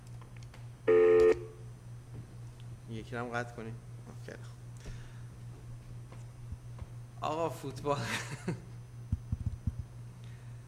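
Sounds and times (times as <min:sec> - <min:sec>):
single loud steady telephone tone: 0:00.9 - 0:01.6
speech: 0:03.0 - 0:04.6, 0:07.2 - 0:08.7
laughter: 0:08.0 - 0:08.8.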